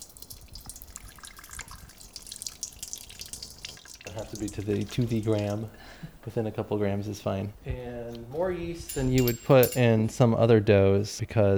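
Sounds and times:
water pouring in a steady stream for enriched dough: 0.0s - 6.0s
speech: 4.2s - 11.5s.

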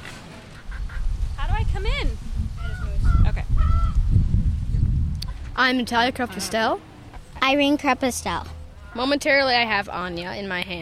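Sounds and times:
backyard chickens squawking in Bloomington Indiana: 0.4s - 4.1s, 8.6s - 9.3s
speech: 5.6s - 10.8s.

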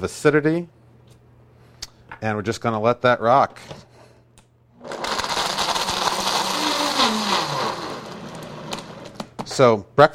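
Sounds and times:
speech: 0.0s - 0.8s, 2.2s - 3.8s, 9.6s - 10.1s
blender churning a smoothie of orange juice ice and lime juice: 4.8s - 9.2s.

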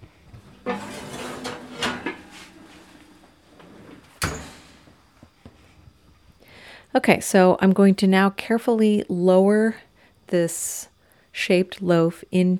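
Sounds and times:
heavy scrape of a Dutch oven: 0.4s - 5.0s
Dutch oven clanking as it is pulled out of an oven: 0.5s - 3.6s
Dutch oven rattling: 0.6s - 3.3s
speech: 6.9s - 12.5s.

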